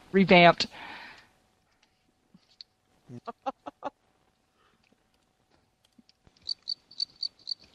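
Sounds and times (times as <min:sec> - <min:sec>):
speech: 0:00.1 - 0:00.9, 0:03.1 - 0:03.6
crickets chirping sound effect: 0:06.4 - 0:07.7.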